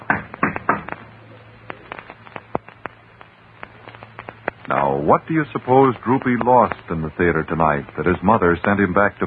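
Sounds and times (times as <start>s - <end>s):
faint steady hum: 0.0s - 9.2s
knocking on a door: 0.1s - 0.9s
speech: 5.0s - 9.2s.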